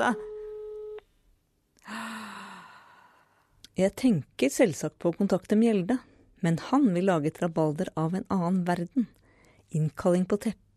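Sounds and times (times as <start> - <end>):
speech: 0.0 - 0.3, 3.8 - 10.7
electronic phone ringing tone: 0.0 - 1.0
loud breathy sigh: 1.8 - 3.6.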